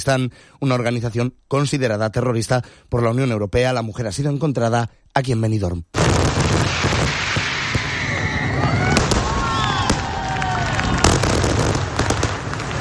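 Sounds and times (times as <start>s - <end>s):
speech: 0.0s - 6.5s
fireworks crackling bursts: 6.0s - 12.7s
fireworks display booming: 6.0s - 12.7s
whistling rockets rising: 6.0s - 12.7s.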